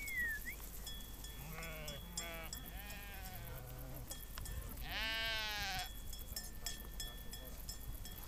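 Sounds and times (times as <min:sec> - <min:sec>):
faint steady tone: 0:00.0 - 0:08.2
sheep bleating: 0:01.4 - 0:04.0, 0:04.8 - 0:05.9.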